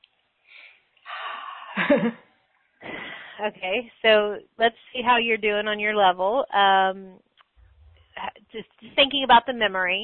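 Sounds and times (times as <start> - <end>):
deep breath: 0.4 - 1.8, 2.8 - 3.4
speech: 1.9 - 2.2, 3.4 - 7.3, 8.2 - 10.0.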